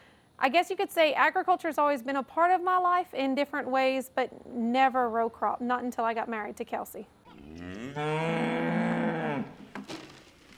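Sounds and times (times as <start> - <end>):
speech: 0.4 - 8.6
cow mooing at a barn: 7.3 - 9.6.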